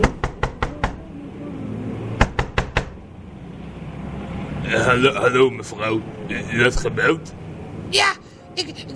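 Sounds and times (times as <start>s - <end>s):
sharp knocks on a window: 0.0s - 1.0s, 2.2s - 3.0s
faint hum: 0.0s - 8.9s
speech: 4.7s - 8.9s.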